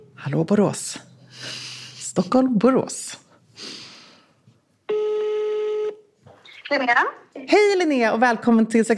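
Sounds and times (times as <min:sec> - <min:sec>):
speech: 0:00.3 - 0:03.2, 0:06.7 - 0:08.9
telephone ringback tone of an outgoing call: 0:04.9 - 0:06.0.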